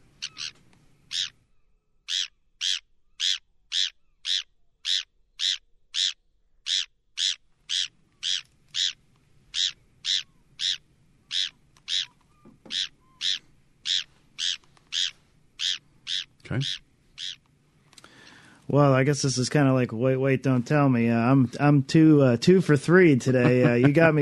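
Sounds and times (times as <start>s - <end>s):
Bonaparte's gull calling with sharp raspy notes: 0.0s - 17.4s
speech: 16.5s - 16.8s, 18.7s - 24.2s
laughter: 23.1s - 24.2s.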